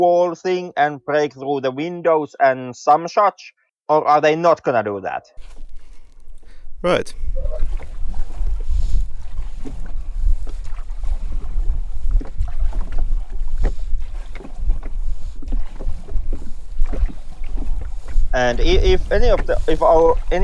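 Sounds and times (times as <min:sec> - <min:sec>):
speech: 0:00.0 - 0:05.6, 0:06.8 - 0:07.9, 0:18.3 - 0:20.4
oars or paddles splashing: 0:05.4 - 0:20.4
water rumbling: 0:05.4 - 0:20.4
wind: 0:05.4 - 0:20.4
oars or paddles knocking against a small boat: 0:07.3 - 0:20.4.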